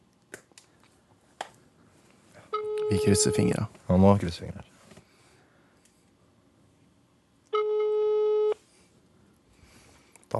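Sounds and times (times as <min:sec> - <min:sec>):
faint hiss: 0:00.0 - 0:10.3
phone ringing tone through a speakerphone: 0:02.5 - 0:03.6, 0:07.5 - 0:08.6
speech: 0:02.9 - 0:04.8.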